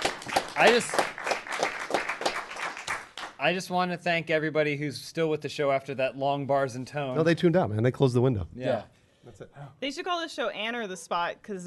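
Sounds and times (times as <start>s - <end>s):
small group clapping: 0.0s - 3.5s
speech: 0.6s - 1.1s, 3.4s - 11.6s.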